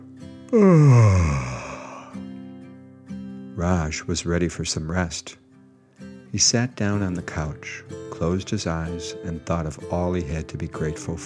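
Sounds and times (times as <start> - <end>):
speech: 0.5 - 1.5, 3.6 - 5.4, 6.3 - 11.2
person yawning: 0.5 - 2.2.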